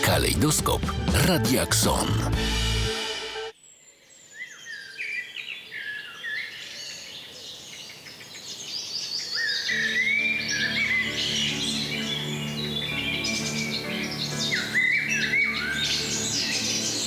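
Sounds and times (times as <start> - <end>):
speech: 0.2 - 2.7
dense chorus of birds singing with chirps and whistled trills: 3.5 - 17.0.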